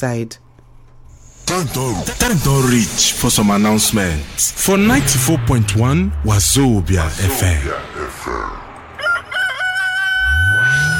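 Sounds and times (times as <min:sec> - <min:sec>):
speech: 0:00.0 - 0:00.4, 0:01.5 - 0:08.7
low rumbling: 0:00.4 - 0:10.9
rooster crowing: 0:09.0 - 0:10.9.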